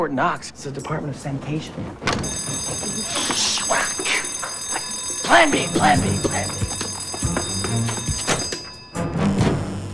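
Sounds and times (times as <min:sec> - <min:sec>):
speech: 0:00.0 - 0:04.4, 0:05.3 - 0:06.8
sanitation department office security alarm ringing after lock picked: 0:02.1 - 0:09.9.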